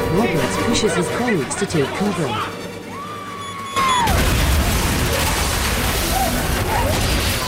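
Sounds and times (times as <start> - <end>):
speech: 0.2 - 2.6
huge explosion: 4.0 - 7.4
loud roar of crashing, rattling debris and shattered glass: 4.0 - 7.4.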